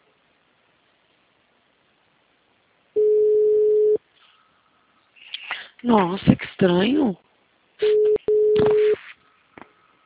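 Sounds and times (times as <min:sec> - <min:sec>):
telephone ringing tone: 0:03.0 - 0:04.0, 0:07.8 - 0:09.0
speech: 0:05.8 - 0:07.9, 0:08.6 - 0:08.9.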